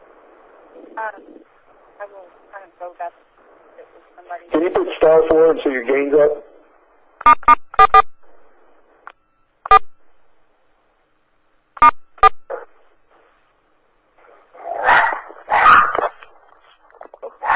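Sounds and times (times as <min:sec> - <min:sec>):
speech: 0:01.0 - 0:06.5, 0:07.2 - 0:08.0
dog barking and yipping: 0:14.5 - 0:16.2.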